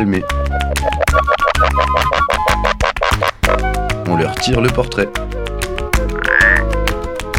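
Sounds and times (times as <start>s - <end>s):
speech: 0.0s - 0.6s, 4.2s - 5.3s
midwife toad giving short spaced piping calls: 0.6s - 4.4s, 6.0s - 6.8s
other frogs croaking and clicking: 0.8s - 3.6s, 6.1s - 6.7s.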